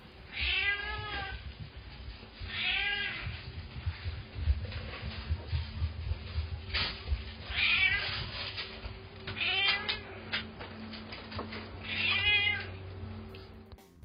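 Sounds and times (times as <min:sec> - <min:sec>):
hungry cat meowing insistently: 0:00.3 - 0:01.4, 0:02.4 - 0:03.3, 0:07.5 - 0:08.3, 0:09.2 - 0:10.4, 0:11.8 - 0:12.8
low steady hum: 0:01.0 - 0:14.0.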